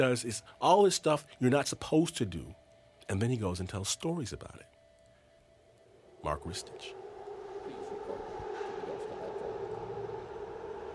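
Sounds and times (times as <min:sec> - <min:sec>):
speech: 0:00.0 - 0:04.7, 0:06.2 - 0:07.0
subway train metallic whine: 0:05.7 - 0:10.9
New York City subway train rumbling: 0:06.2 - 0:10.9.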